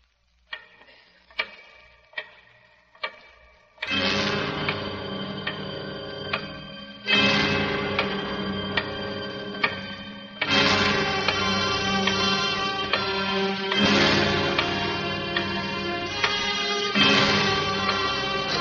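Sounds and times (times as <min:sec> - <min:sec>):
large clock ticking: 0:00.0 - 0:18.5
resonant sustained drone: 0:03.9 - 0:18.5.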